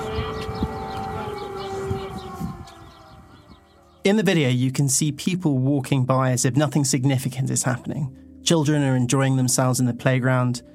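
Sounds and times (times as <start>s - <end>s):
civil defense air raid siren droning: 0.0s - 4.2s
speech: 4.0s - 10.7s.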